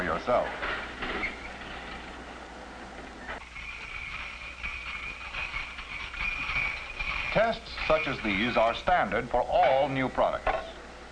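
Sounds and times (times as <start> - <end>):
speech: 0.1 - 1.4, 7.3 - 10.6
hot frying pan plunged into cold water hissing and sizzling: 3.3 - 9.2.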